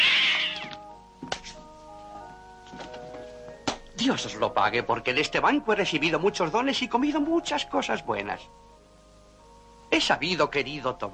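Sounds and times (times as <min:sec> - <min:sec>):
cat meowing as it is removed from a chair: 0:00.0 - 0:01.0
speech: 0:04.0 - 0:08.6, 0:09.9 - 0:11.1.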